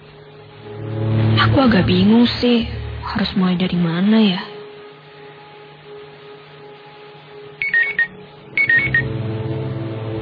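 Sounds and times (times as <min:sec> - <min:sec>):
low hum: 0:00.0 - 0:10.2
speech: 0:01.6 - 0:04.5
phone text message notification chime: 0:07.6 - 0:09.0.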